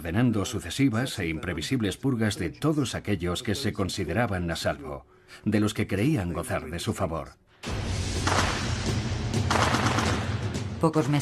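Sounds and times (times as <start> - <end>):
speech: 0.0 - 8.5, 10.8 - 11.2
sustained gunfire in overlapping volleys: 8.2 - 10.6.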